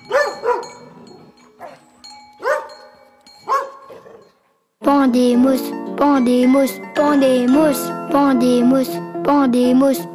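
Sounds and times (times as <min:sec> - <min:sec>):
dog barking: 0:00.0 - 0:00.8, 0:01.6 - 0:01.8, 0:02.4 - 0:02.9, 0:03.5 - 0:04.2
speech: 0:05.0 - 0:10.1.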